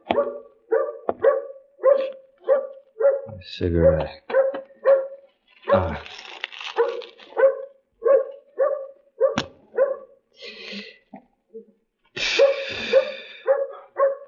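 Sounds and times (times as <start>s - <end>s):
dog barking: 0.0s - 3.4s, 4.2s - 5.9s, 6.7s - 10.3s, 12.3s - 14.2s
speech: 3.4s - 4.3s, 5.7s - 6.2s.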